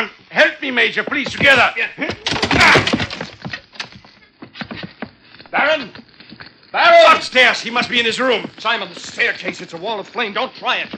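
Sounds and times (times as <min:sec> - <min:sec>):
wood creaking as the door gives way: 0:00.4 - 0:10.9
speech: 0:00.8 - 0:03.0, 0:05.5 - 0:06.0, 0:06.8 - 0:10.9
wooden door being forced and smashed open: 0:01.3 - 0:03.9.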